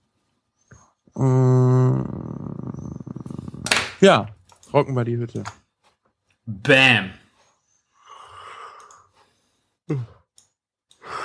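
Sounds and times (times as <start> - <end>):
speech: 1.2 - 1.5, 4.0 - 5.6, 6.5 - 7.2, 9.9 - 10.2
person yawning: 1.2 - 3.7
short voiced groan sliding downward: 1.2 - 3.7.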